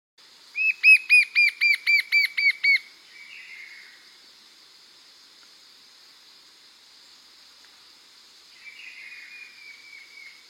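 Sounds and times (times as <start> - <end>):
fringe-backed fire-eye whistling song in Bahia, Brazil: 0.5 - 3.8, 8.6 - 10.4.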